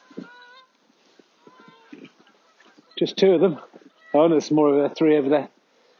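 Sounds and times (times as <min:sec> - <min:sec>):
geese honking while flying overhead: 0:00.0 - 0:04.4
outdoor hiss: 0:00.0 - 0:05.9
speech: 0:03.0 - 0:05.6.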